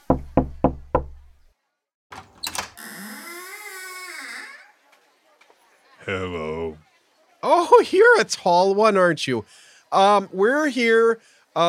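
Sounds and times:
firm knocking on a door: 0.0 - 1.3
speech: 6.1 - 6.8, 7.4 - 11.6.

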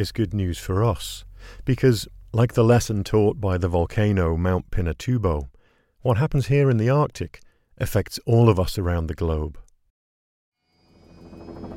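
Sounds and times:
speech: 0.0 - 9.6
helicopter engine and rotor blades winding up in the Arctic: 11.0 - 11.7.

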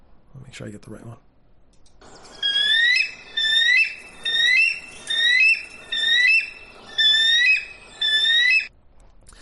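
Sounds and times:
speech: 0.4 - 1.3
bald eagle calling with gull-like squealing chirps: 2.1 - 8.7.

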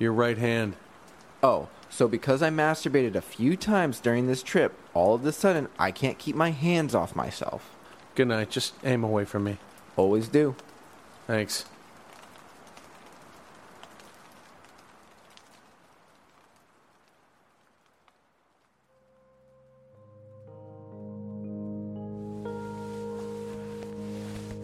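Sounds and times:
speech: 0.0 - 0.8, 1.4 - 10.7, 11.3 - 11.7
rain pattering on a tent at night: 0.0 - 19.7, 22.4 - 24.6
soft sustained music: 18.9 - 24.6.

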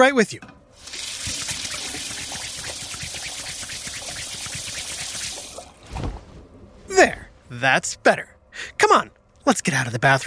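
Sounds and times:
speech: 0.0 - 1.0, 7.0 - 10.2
tap water running with uneven splashing: 0.8 - 5.8.

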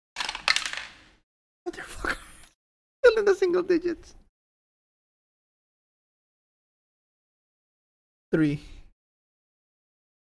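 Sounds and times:
dice tumbling across a hard tabletop: 0.2 - 1.1
speech: 3.2 - 4.2, 8.3 - 8.8.

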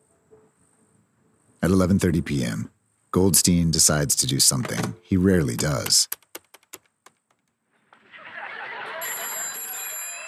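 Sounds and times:
speech: 1.6 - 6.2
key clicks: 4.6 - 7.2
laughter: 8.0 - 10.2
telephone ringing: 8.6 - 10.2.

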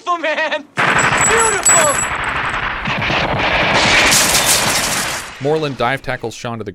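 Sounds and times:
speech: 0.1 - 1.6, 5.4 - 6.7
sustained return gunfire from a gate into a room during a battle: 0.8 - 5.4.

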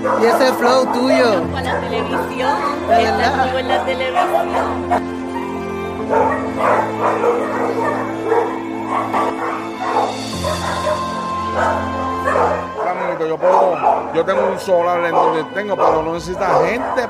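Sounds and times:
speech: 0.0 - 5.2, 6.1 - 9.4, 13.2 - 17.0
several dogs barking and yipping: 0.0 - 17.0.

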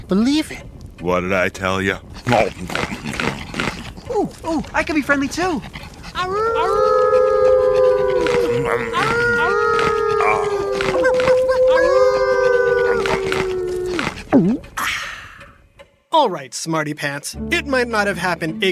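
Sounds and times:
speech: 0.1 - 7.2, 8.5 - 11.0, 16.2 - 18.7
wolf short downward yelp: 2.2 - 14.8
wolves howling in a loud chorus: 6.1 - 14.3.

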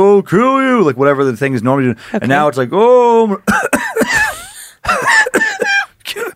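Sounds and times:
speech: 0.0 - 4.2
person imitating harsh wheezy coughing of a ghost with COVID-19: 3.5 - 6.3.

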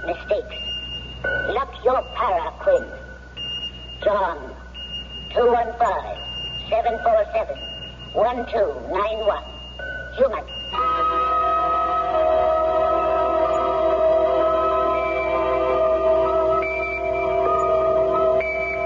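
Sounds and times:
speech: 0.0 - 0.7, 1.6 - 3.1, 4.0 - 4.6, 5.3 - 9.5, 10.2 - 11.3
small electronic pocket alarm watch beeping: 0.0 - 18.8.

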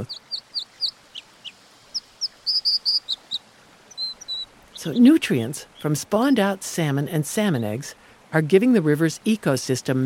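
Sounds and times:
speech: 0.0 - 0.2, 4.8 - 10.0
American Dipper calling: 0.0 - 1.3, 1.9 - 6.5.

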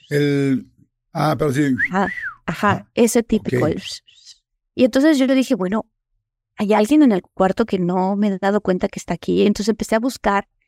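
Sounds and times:
speech: 0.1 - 4.2, 4.8 - 5.9, 6.6 - 10.6
voice imitating a catcall wolf-whistle: 1.8 - 2.4.

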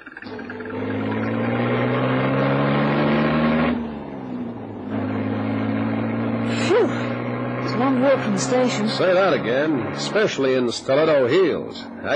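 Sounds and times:
car engine humming as car pulls away: 0.0 - 12.1
speech: 8.1 - 12.1.

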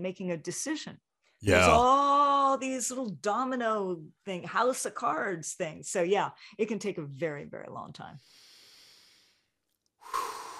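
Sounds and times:
speech: 0.0 - 8.4
deep breathing: 8.2 - 10.5.

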